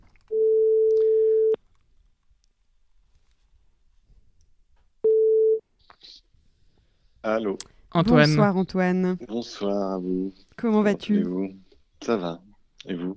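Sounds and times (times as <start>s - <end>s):
telephone ringback tone on an outgoing call: 0.3s - 1.6s, 5.1s - 5.6s
speech: 7.2s - 13.1s.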